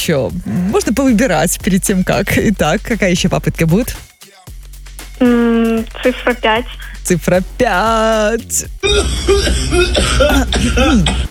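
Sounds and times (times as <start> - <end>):
speech: 0.0 - 4.1, 5.2 - 11.2
throat clearing cough: 8.9 - 11.2.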